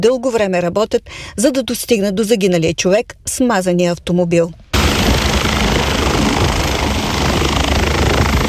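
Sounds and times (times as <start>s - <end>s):
speech: 0.0s - 5.2s
medical helicopter engine and rotor roar landing on a motorway: 4.7s - 8.4s.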